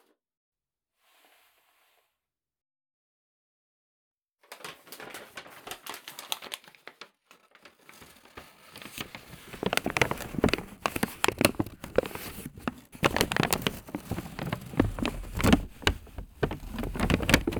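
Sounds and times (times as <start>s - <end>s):
paper bag crinkling as pulled over head: 4.6s - 17.5s.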